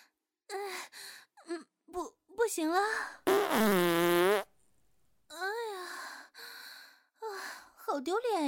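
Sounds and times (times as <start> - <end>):
speech: 2.5 - 4.2, 8.0 - 8.4
short sputtering fart bursts ending in a long loud buzzing fart: 3.3 - 4.5.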